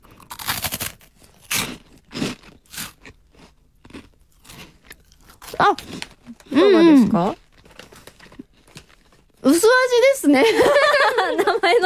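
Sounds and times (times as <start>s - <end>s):
crunching and chewing a lightly flavoured snack: 0.0s - 9.4s
speech: 5.6s - 7.4s, 9.5s - 11.8s
laughter: 10.4s - 11.8s.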